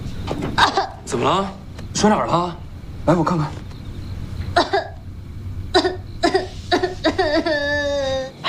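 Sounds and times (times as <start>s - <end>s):
speech: 0.3s - 3.6s
person crying with sobbing gasps and whimpering wail: 6.2s - 8.3s.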